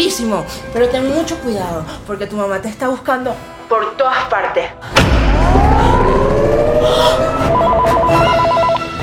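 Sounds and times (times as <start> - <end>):
speech: 0.2 - 6.2, 6.8 - 7.6
rising and falling sweeping tones: 5.2 - 8.9
rapid electronic telephone trill: 7.5 - 8.8.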